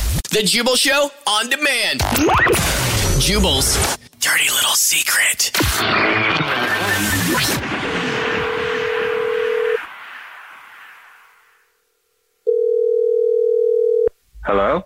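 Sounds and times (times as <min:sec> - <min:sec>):
speech: 0:00.3 - 0:07.9
dense burst of noise: 0:05.6 - 0:11.8
telephone dial tone while placing a call: 0:08.9 - 0:09.8, 0:12.5 - 0:14.1.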